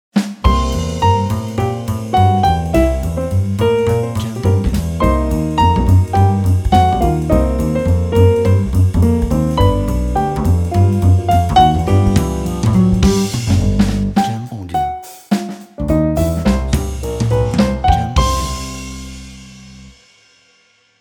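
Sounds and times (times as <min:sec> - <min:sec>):
upbeat jazz intro: 0:00.2 - 0:19.9.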